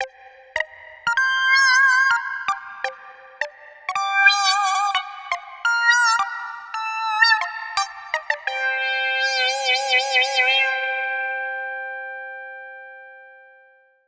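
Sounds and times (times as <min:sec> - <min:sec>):
synthesizer loop with LFO modulation: 0:00.0 - 0:10.7.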